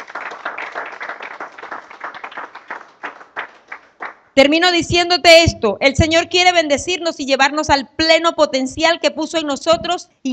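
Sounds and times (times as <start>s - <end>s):
audience applauding in praise: 0.0s - 4.3s
speech: 4.4s - 10.3s.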